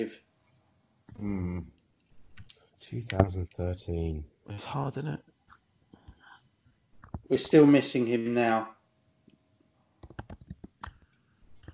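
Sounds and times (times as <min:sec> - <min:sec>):
speech: 0:00.0 - 0:00.2, 0:01.2 - 0:01.7, 0:02.8 - 0:05.3, 0:07.3 - 0:08.8
typing on a computer keyboard: 0:10.0 - 0:11.7.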